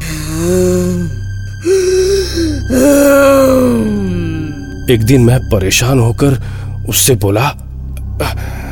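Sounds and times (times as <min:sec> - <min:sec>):
woman growling in a strange strained voice: 0:00.0 - 0:04.6
speech: 0:00.4 - 0:03.1, 0:04.9 - 0:07.6, 0:08.2 - 0:08.6.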